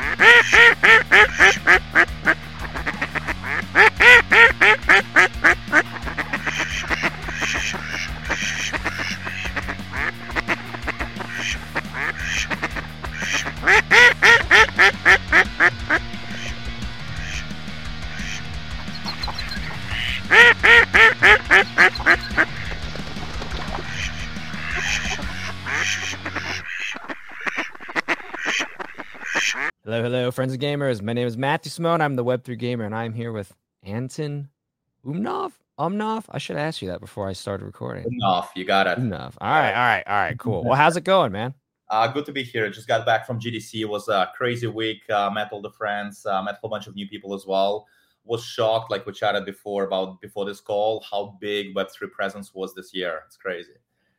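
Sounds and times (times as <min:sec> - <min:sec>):
stepping bass line in a musical jingle: 0:00.0 - 0:26.6, 0:38.0 - 0:39.2
ducks quacking: 0:00.0 - 0:29.7
speech: 0:30.6 - 0:53.8.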